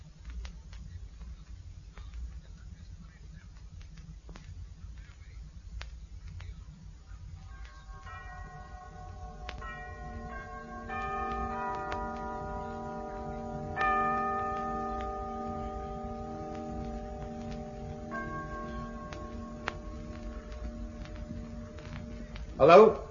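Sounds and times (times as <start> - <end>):
faint steady ticking: 0.0 - 23.0
clock striking the hour with resonant bell-like chimes: 7.4 - 23.0
speech: 22.6 - 23.0.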